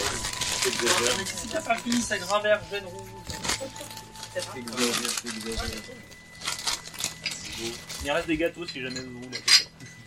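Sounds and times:
speech: 0.7s - 6.2s, 7.6s - 9.7s
glasses clinking as they are gathered from a table: 7.1s - 10.0s.

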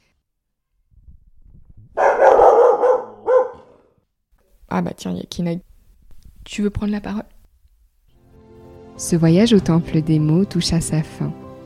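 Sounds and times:
pet dog barking: 2.0s - 3.8s
speech: 4.7s - 5.7s, 6.4s - 7.3s, 9.0s - 11.4s.

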